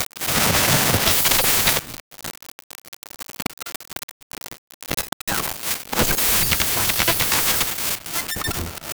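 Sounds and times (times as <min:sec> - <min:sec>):
experimental glitch interference white noise: 0:00.2 - 0:02.0, 0:05.3 - 0:08.9.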